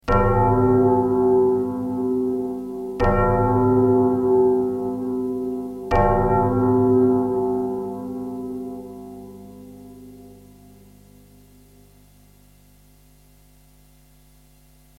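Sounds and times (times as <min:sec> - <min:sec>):
bell pitched at A3: 0:00.1 - 0:10.8.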